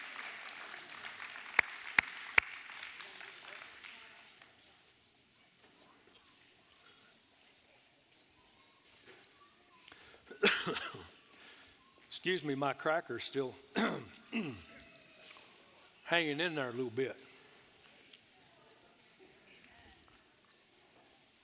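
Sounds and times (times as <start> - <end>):
sharp claps: 0.0 - 4.2
crowd applauding: 0.0 - 4.5
speech: 12.2 - 14.6, 16.1 - 17.2.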